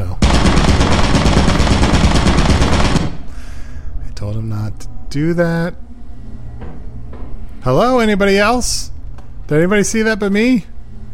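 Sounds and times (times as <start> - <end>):
rapid turret gunfire in a video game: 0.2 - 3.4
speech: 4.4 - 5.8, 7.6 - 8.9, 9.5 - 10.7.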